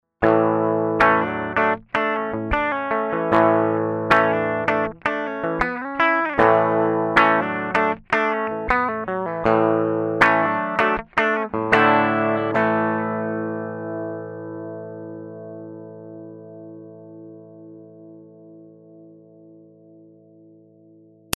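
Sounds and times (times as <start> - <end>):
crunchy rhythm: 0.2 - 13.6.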